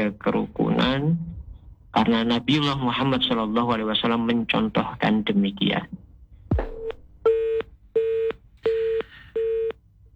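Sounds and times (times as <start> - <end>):
speech: 0.0 - 1.4, 2.0 - 6.0
telephone busy tone after a call is cut off: 7.3 - 9.7.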